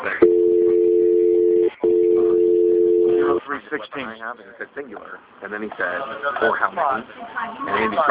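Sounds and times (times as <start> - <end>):
telephone ringing heard through the line: 0.2 - 3.4
speech: 4.3 - 8.1.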